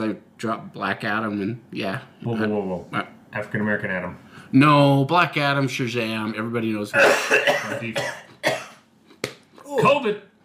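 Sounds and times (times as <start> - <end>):
speech: 0.0 - 8.6, 9.8 - 10.3
harsh coughs: 7.0 - 8.8.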